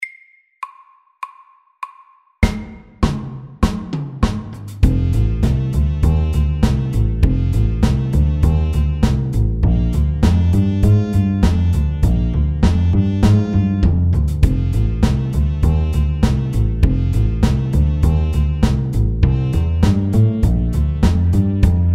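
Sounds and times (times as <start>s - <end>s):
walking bass line: 4.8s - 21.9s.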